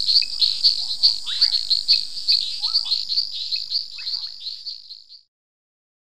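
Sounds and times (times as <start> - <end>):
long-nosed reed frog Hyperolius nasutus high-pitched ticking chirps: 0.0 - 5.2.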